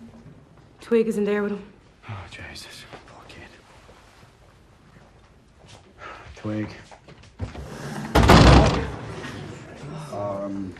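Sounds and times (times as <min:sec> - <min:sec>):
speech: 0:00.9 - 0:02.8, 0:06.4 - 0:06.9, 0:10.2 - 0:10.7
door slamming shut: 0:08.0 - 0:09.2.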